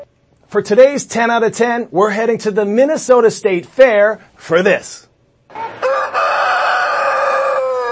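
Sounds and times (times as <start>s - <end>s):
speech: 0.5s - 5.7s
rooster crowing: 5.5s - 7.9s.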